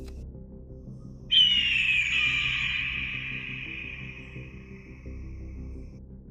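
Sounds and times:
screech of an immense bird with golden feathers and crimson-red breast: 1.3s - 4.9s.

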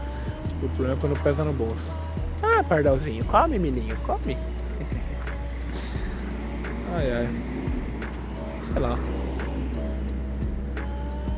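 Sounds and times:
cars passing on a busy avenue: 0.0s - 11.3s
speech: 0.6s - 5.0s, 7.0s - 7.5s, 8.7s - 9.3s
laughter: 4.7s - 5.2s.

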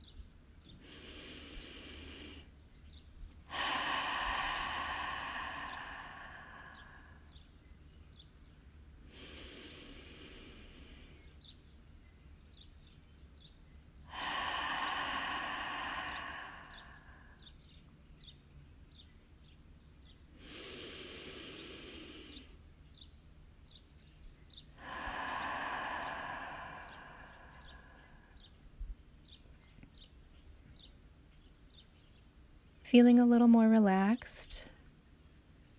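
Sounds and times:
deep belly breathing in and out during guided breathwork meditation: 0.6s - 7.5s, 9.0s - 11.6s, 14.0s - 17.8s, 20.0s - 23.0s, 24.6s - 30.0s
speech: 32.9s - 34.6s.

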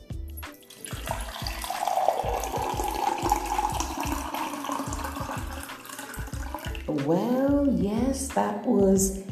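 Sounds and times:
water pouring into an empty glass: 0.5s - 6.9s
speech: 7.0s - 9.3s.

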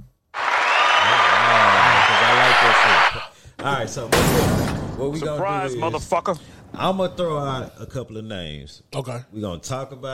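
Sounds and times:
loud dense crowd applause: 0.4s - 3.3s
speech: 3.6s - 10.1s.

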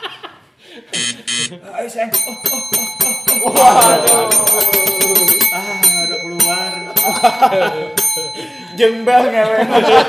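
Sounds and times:
laughter: 0.0s - 5.4s, 6.6s - 8.6s, 9.2s - 10.0s
speech: 0.9s - 5.8s, 7.2s - 10.0s
small bell ringing with a high thin tone: 2.1s - 10.0s.

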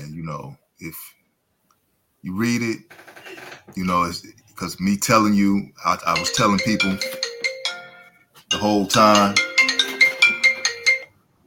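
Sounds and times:
speech: 0.2s - 1.2s, 2.2s - 7.3s, 8.5s - 9.4s
phone ringtone with bright chiming electronic notes: 6.1s - 11.1s.

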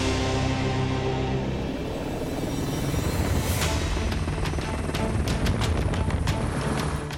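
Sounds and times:
helicopter landing with loud steady roar: 0.2s - 7.1s.

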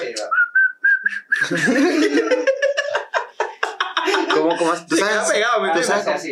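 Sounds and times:
person whistling imitating the Silbón ghost: 0.2s - 1.6s
breathy laughter and giggling: 1.3s - 5.0s
speech: 1.5s - 2.6s, 4.4s - 6.3s.

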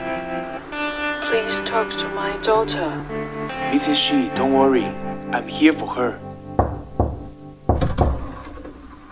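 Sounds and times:
speech: 1.3s - 6.3s
solid knocks on a wooden door: 6.6s - 8.8s.

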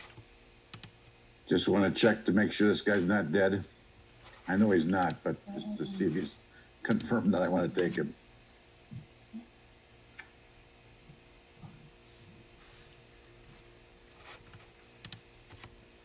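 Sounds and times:
low steady hum: 0.0s - 16.0s
speech: 1.5s - 3.8s, 4.5s - 8.2s
typing on a computer keyboard: 15.0s - 15.7s.

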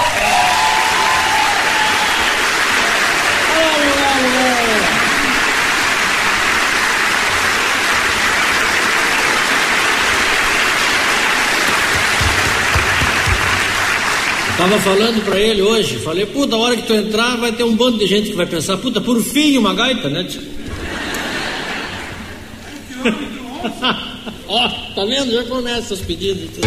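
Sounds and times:
faint whistles or cheers: 0.0s - 2.6s
sustained audience applause welcoming a musician: 0.0s - 15.9s
speech: 14.6s - 20.6s, 23.0s - 26.6s
laughter: 20.6s - 25.0s.

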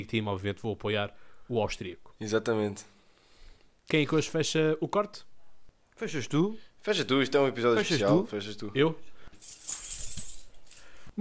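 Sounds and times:
speech: 0.0s - 3.0s, 3.9s - 5.3s, 6.0s - 9.6s
bunch of keys jangling: 9.4s - 11.0s.

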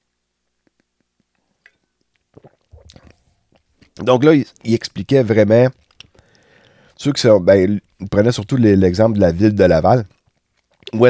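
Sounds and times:
person sipping coffee: 0.6s - 8.2s, 10.1s - 11.0s
swallowing: 2.1s - 4.7s, 5.7s - 7.0s, 10.1s - 11.0s
speech: 4.0s - 5.8s, 7.0s - 10.2s, 10.8s - 11.0s
breathy exhale: 6.1s - 7.0s.

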